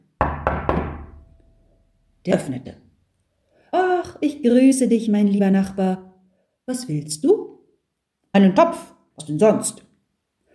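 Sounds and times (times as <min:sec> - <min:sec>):
knocking on a wooden front door: 0:00.2 - 0:01.2
speech: 0:02.2 - 0:02.8, 0:04.2 - 0:06.1, 0:06.7 - 0:07.5, 0:08.4 - 0:09.8.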